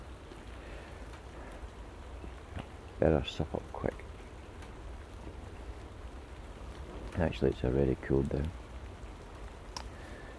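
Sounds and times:
raindrops falling into water making small ripples: 0:00.0 - 0:10.3
speech: 0:03.0 - 0:04.1, 0:07.2 - 0:08.6.

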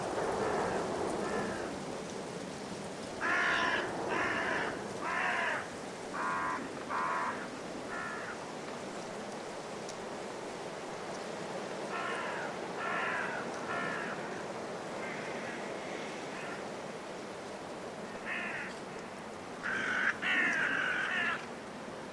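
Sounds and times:
strong gusting force 6 winter wind in woodland: 0:00.0 - 0:22.1
carrion crows cawing in woodland trees before roosting: 0:00.5 - 0:01.8, 0:03.2 - 0:08.4, 0:11.9 - 0:16.7, 0:18.1 - 0:21.5.

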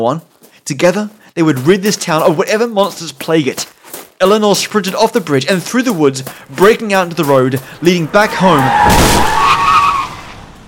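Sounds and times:
speech: 0:00.0 - 0:09.4
truck tires squealing as truck skids on a road: 0:08.1 - 0:10.6.

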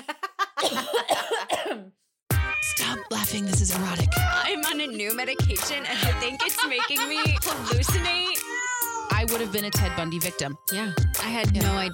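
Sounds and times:
person coughing after eating crackers: 0:00.6 - 0:02.0
speech: 0:03.2 - 0:11.9
laughter: 0:05.7 - 0:08.4.

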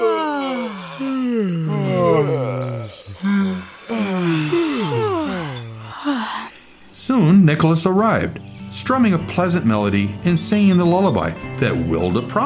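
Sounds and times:
several people yawning: 0:00.0 - 0:06.7
speech: 0:07.6 - 0:12.4.

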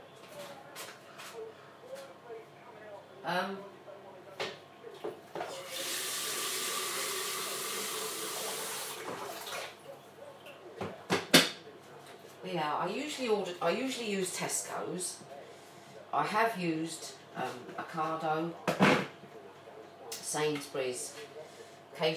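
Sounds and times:
speech: 0:03.3 - 0:03.7, 0:12.5 - 0:15.3, 0:16.1 - 0:19.0, 0:20.3 - 0:21.4, 0:22.0 - 0:22.1
tap water rushing into a kettle: 0:05.5 - 0:09.7.

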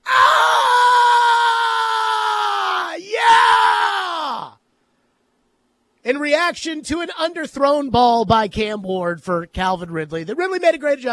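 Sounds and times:
football fans screaming in a highlight video: 0:00.0 - 0:04.6
speech: 0:06.1 - 0:11.1.

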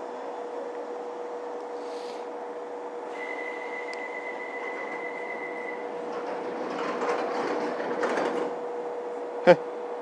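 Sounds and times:
rumbling Underground station noise: 0:00.0 - 0:10.0
Underground train doors shutting on a Circle Line platform: 0:03.0 - 0:09.3.

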